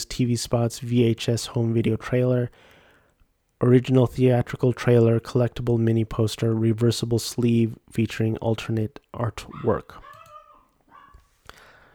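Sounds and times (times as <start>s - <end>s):
speech: 0.2s - 2.7s, 3.6s - 10.1s
dogs yelping and barking: 9.5s - 11.3s.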